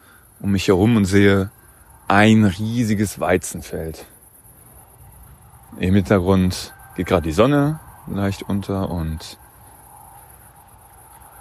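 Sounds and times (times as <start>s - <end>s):
crickets chirping in a summer garden beside a wheat field at sunset: 0.0s - 11.3s
speech: 0.4s - 4.1s, 5.7s - 9.4s.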